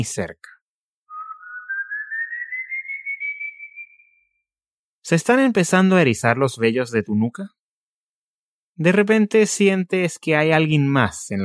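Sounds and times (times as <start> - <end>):
speech: 0.0 - 0.5, 5.0 - 7.6, 8.8 - 11.4
eerie rising whistle: 1.1 - 4.3.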